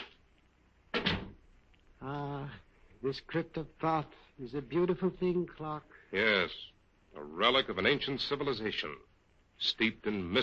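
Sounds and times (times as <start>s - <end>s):
door closing with heavy thud in a crypt room: 0.9s - 1.4s
speech: 3.0s - 10.4s.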